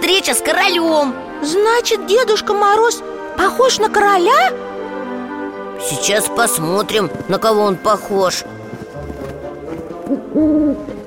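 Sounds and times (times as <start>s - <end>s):
speech: 0.1s - 4.6s, 5.8s - 8.6s, 10.1s - 11.0s
owl hooting: 10.1s - 10.9s.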